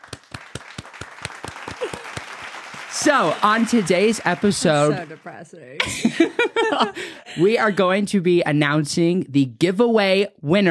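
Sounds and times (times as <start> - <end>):
short round of applause: 0.0 - 5.8
laughter: 1.6 - 2.3, 5.8 - 8.0
speech: 3.0 - 10.7.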